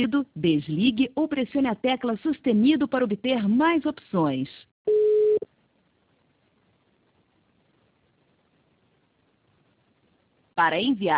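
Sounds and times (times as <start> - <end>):
speech: 0.0 - 5.5, 10.6 - 11.1
voicemail recording beep tone: 4.9 - 5.4.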